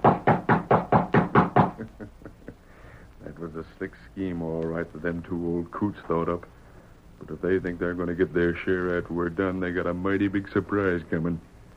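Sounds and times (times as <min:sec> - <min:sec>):
knocking on a wooden ranch house door: 0:00.0 - 0:01.8
speech: 0:03.8 - 0:06.6, 0:07.2 - 0:11.5.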